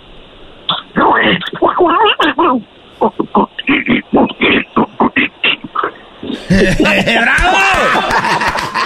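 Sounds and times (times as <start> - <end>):
person imitating a cartoon duck's quacking voice: 0.7 - 6.5
speech: 1.8 - 3.9, 6.5 - 8.8
laughter: 6.3 - 8.8.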